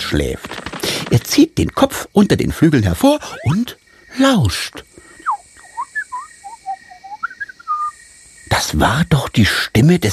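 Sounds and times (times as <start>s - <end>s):
faint steady hiss: 0.0s - 10.1s
speech: 0.1s - 5.0s, 8.6s - 10.1s
small bird chirping: 5.0s - 8.0s.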